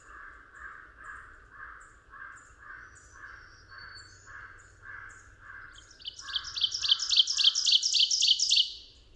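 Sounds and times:
ovenbird singing: 2.7 - 9.1.

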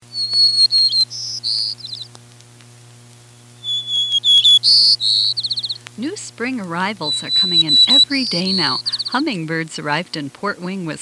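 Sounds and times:
White-crowned sparrow song: 0.0 - 2.2, 3.2 - 5.8, 7.0 - 9.3
low steady hum: 0.0 - 11.0
speech: 4.7 - 5.4, 6.0 - 11.0.

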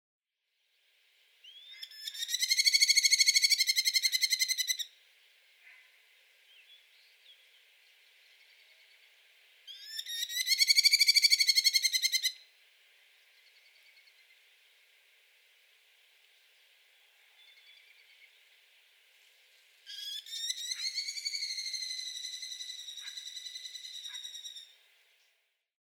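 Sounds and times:
merlin calls: 1.5 - 5.0, 5.6 - 14.6, 19.8 - 24.9.

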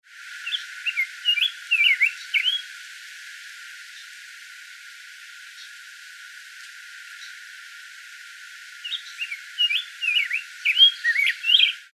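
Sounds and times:
Rose-breasted Grosbeak singing: 0.4 - 2.7, 8.8 - 11.9.

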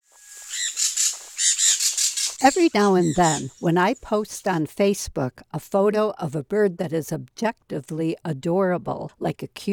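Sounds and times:
Sun parakeet giving harsh high screeching squawks: 0.3 - 3.6
speech: 2.4 - 9.7.

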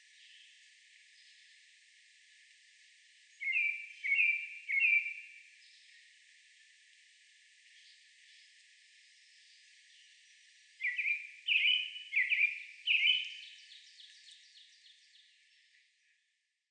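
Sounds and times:
American robin calling: 3.4 - 5.3, 10.8 - 14.7.

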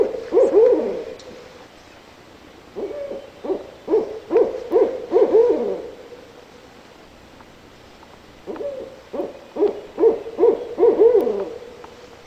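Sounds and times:
barred owl hooting: 0.0 - 1.6, 2.6 - 6.6, 8.4 - 12.2.

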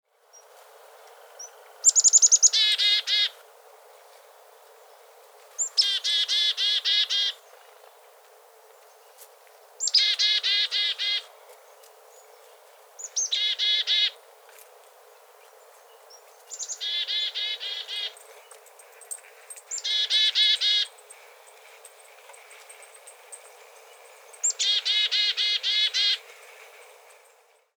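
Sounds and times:
Black-capped Chickadee dee-dee calls: 1.4 - 3.5, 5.6 - 7.6, 9.8 - 14.3, 15.4 - 21.7, 22.3 - 27.3.

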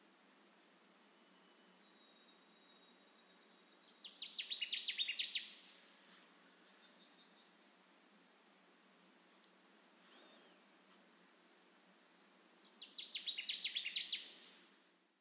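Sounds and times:
Connecticut warbler singing quick repeated slurred notes: 0.8 - 5.8, 10.1 - 14.5.

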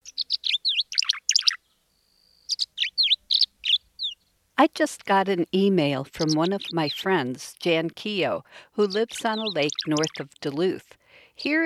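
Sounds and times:
Tree Swallows chirping and twittering: 0.0 - 4.3, 6.1 - 7.2, 8.8 - 10.7
speech: 4.6 - 11.6.

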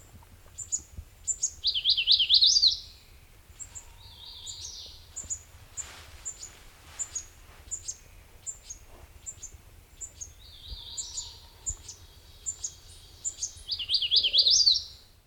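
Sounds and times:
MacGillivray's warbler song phrases: 0.6 - 15.2.

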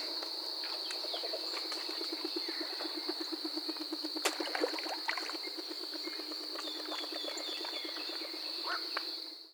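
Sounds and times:
great horned owl pair hooting: 1.1 - 9.3.

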